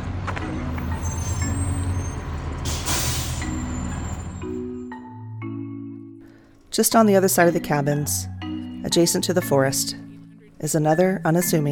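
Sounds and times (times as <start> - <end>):
large school bus engine droning: 0.0 - 5.0
school bus air brakes hissing: 0.9 - 4.5
speech: 6.8 - 10.0, 10.6 - 11.7.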